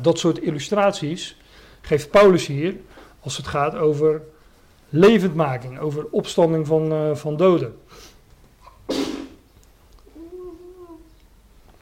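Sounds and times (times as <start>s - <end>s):
speech: 0.0s - 8.1s
person sneezing: 8.0s - 9.4s
voiced murmur: 10.0s - 11.2s.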